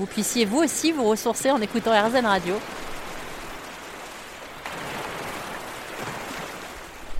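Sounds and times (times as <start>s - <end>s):
speech: 0.0s - 2.9s
gentle lapping water: 0.0s - 7.1s
sea waves washing: 0.0s - 7.1s.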